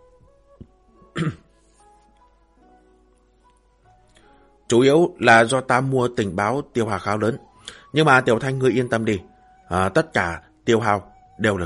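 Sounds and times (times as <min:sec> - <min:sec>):
man catching his throat: 0:01.1 - 0:01.5
man hurried dry coughing: 0:01.1 - 0:01.5
speech: 0:04.7 - 0:11.6.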